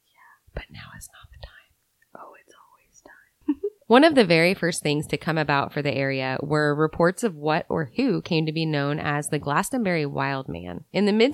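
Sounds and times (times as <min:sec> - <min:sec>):
breathy ASMR-style whispering: 0:00.0 - 0:03.5
speech: 0:03.9 - 0:11.3.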